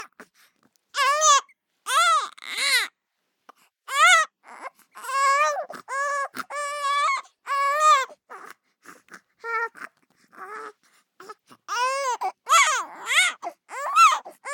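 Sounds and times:
three-month-old baby boy screaming: 1.0s - 2.9s, 5.0s - 8.1s, 11.7s - 14.5s.

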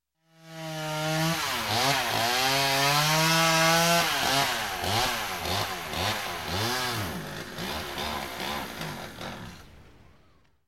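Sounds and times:
chainsaw running and stalling during logging: 0.3s - 9.8s.

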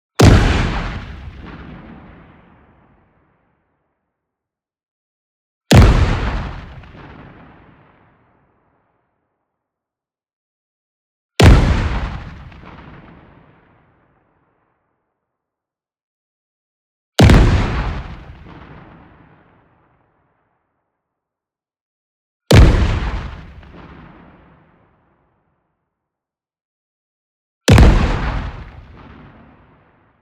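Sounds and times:
short cannon shot explosion: 0.2s - 2.9s, 5.7s - 8.2s, 11.4s - 13.8s, 17.2s - 19.6s, 22.5s - 24.8s, 27.7s - 30.1s.

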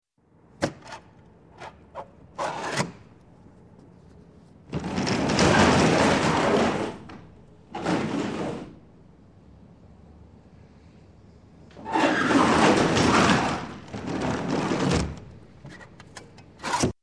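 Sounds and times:
truck sliding rear door opening: 4.8s - 8.9s, 11.7s - 15.4s.

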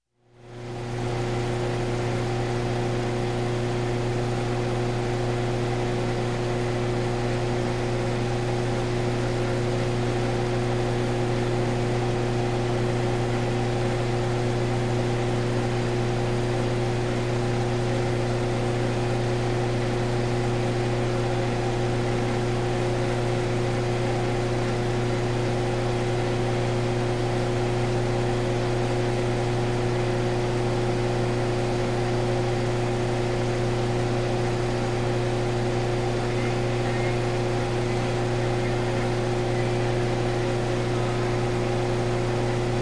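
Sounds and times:
power plant turbine: 0.6s - 42.8s
public address announcement in background: 36.1s - 42.2s.

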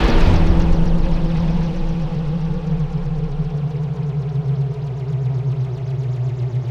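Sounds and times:
cinematic metal impacts: 0.0s - 5.4s
synth sting: 0.0s - 6.6s.

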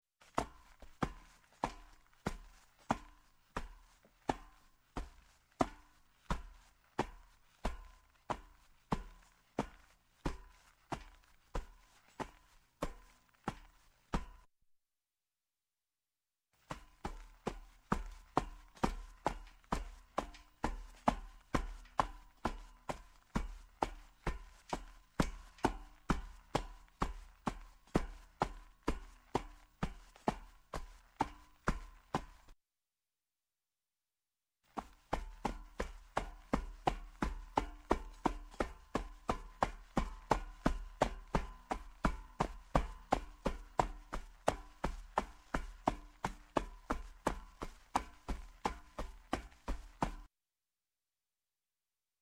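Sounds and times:
sneakers footsteps going down metal steps: 0.2s - 14.5s, 16.6s - 32.6s, 34.7s - 50.3s.

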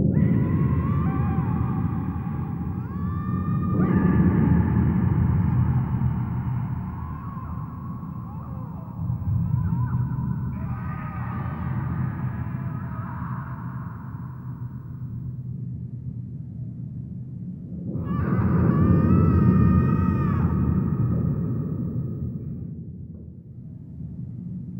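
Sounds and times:
evil ambient torture scream: 0.1s - 15.0s, 17.9s - 22.5s.

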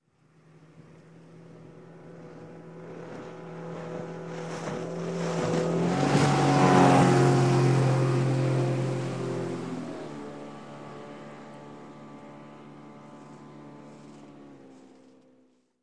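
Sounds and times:
50 Hp boat outboard motor passing by fast: 0.1s - 15.7s.

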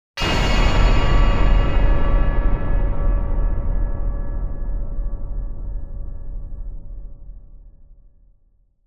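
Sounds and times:
strong low metal impact hit: 0.2s - 7.1s.

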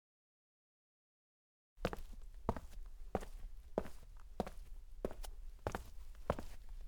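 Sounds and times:
clean sneaker footsteps on cement: 1.8s - 6.8s.

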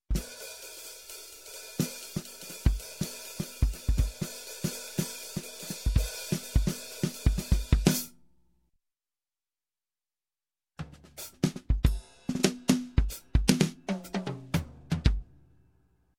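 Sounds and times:
jazz drums: 0.1s - 8.1s, 10.8s - 15.4s.

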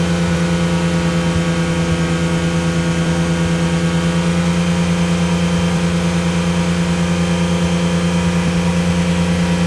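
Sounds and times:
Ferrari Testarossa sports car engine: 0.0s - 9.6s.

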